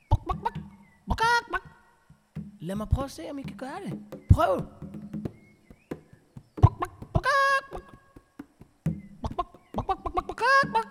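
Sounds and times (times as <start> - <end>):
person imitating a hen clucking: 0.1 - 1.8, 6.6 - 8.1, 9.2 - 10.9
speech: 2.6 - 4.8.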